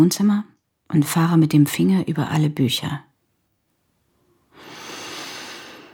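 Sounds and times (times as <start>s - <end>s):
speech: 0.0s - 3.1s
long deep inhale breathing in the scent of books: 4.5s - 5.9s.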